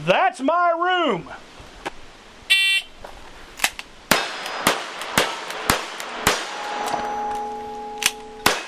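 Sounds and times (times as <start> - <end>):
speech: 0.0 - 1.5
six-shooter pistol shots in a simulated old Western gunfight: 4.1 - 7.0, 8.4 - 8.6
metallic clang of bullets hitting steel targets: 4.2 - 8.6.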